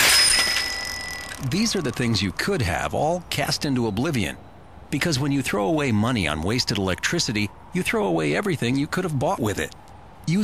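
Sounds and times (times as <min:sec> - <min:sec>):
bicycle bell ringing: 0:00.0 - 0:01.8
speech: 0:01.4 - 0:10.4.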